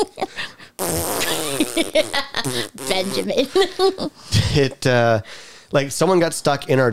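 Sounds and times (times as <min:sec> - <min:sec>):
loud raspy fart noise: 0:00.8 - 0:03.4
speech: 0:01.6 - 0:06.9.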